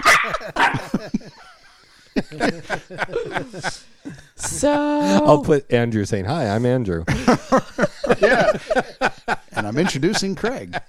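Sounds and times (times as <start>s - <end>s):
small Chihuahua dog yapping: 0.0s - 0.8s
laughter: 0.0s - 5.4s, 6.5s - 10.8s
speech: 2.4s - 3.9s, 4.6s - 10.8s.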